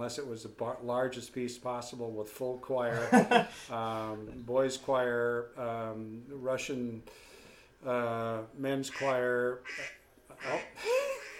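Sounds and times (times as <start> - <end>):
speech: 0.0 - 11.1
laughter: 2.9 - 3.6
duck quacking: 8.9 - 11.3.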